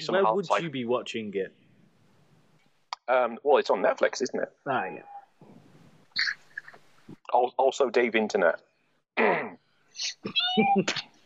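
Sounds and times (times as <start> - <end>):
speech: 0.0 - 1.6, 3.1 - 5.1, 7.3 - 11.1
pet cat meowing: 10.2 - 10.9.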